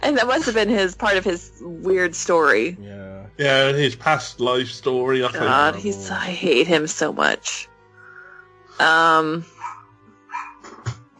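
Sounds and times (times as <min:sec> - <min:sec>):
speech: 0:00.1 - 0:07.7, 0:08.8 - 0:09.5
laughter: 0:02.8 - 0:06.3
neighbor's dog barking: 0:09.5 - 0:10.8.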